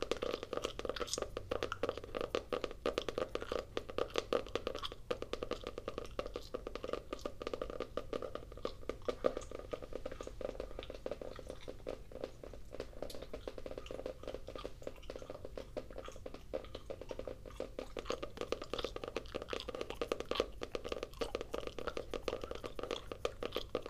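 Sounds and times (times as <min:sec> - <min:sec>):
gum chewing with wet smacks: 0:00.0 - 0:23.8.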